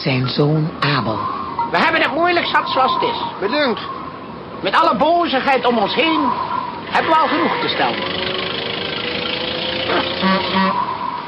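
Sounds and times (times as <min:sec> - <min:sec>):
speech: 0:00.0 - 0:04.0, 0:04.6 - 0:08.5, 0:09.9 - 0:10.8
old car approaching with its engine running: 0:03.5 - 0:11.2
car horn toots: 0:09.1 - 0:11.0.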